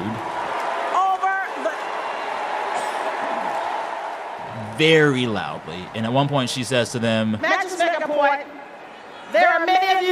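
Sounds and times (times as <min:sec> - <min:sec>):
large indoor convention crowd booing loudly: 0:00.0 - 0:06.7
speech: 0:04.8 - 0:08.6, 0:09.3 - 0:10.0.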